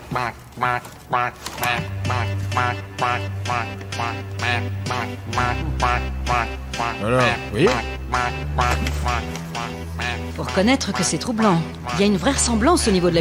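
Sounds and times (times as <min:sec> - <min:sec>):
duck quacking: 0:00.0 - 0:13.2
speech: 0:00.2 - 0:13.2
low droning hum: 0:04.5 - 0:08.7.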